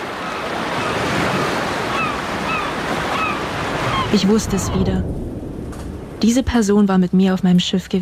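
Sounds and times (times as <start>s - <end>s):
faint high seagull cries: 0.0s - 4.8s
distant ocean surf: 0.0s - 8.0s
speech: 4.1s - 5.2s, 6.2s - 8.0s.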